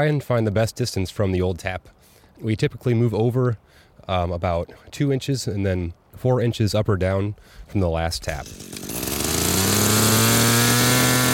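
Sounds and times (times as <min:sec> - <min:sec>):
speech: 0:00.0 - 0:09.0
gas-powered drill boring into a maple tree: 0:08.3 - 0:11.3.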